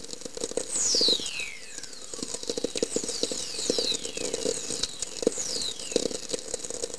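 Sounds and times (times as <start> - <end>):
whistler: 0.7 - 6.3.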